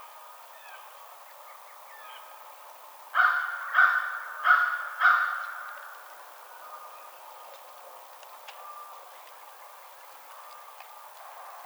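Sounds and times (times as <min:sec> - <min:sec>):
American crow cawing: 0:03.2 - 0:06.0.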